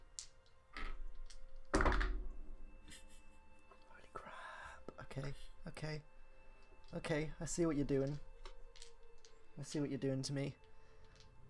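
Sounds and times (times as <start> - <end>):
dice rattling on a tabletop during a game: 0.2 - 2.2, 6.8 - 9.8
speech: 5.2 - 6.2, 6.9 - 8.3, 9.6 - 10.7.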